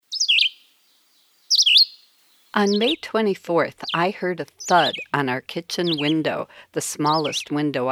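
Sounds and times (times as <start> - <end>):
Red-eyed Vireo song: 0.1 - 0.6, 1.5 - 2.0
speech: 2.6 - 7.8.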